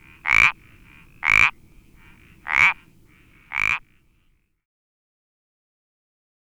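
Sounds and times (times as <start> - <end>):
Iberian parsley frog Pelodytes ibericus croaking: 0.0 - 4.1
soft background hiss: 0.0 - 4.3.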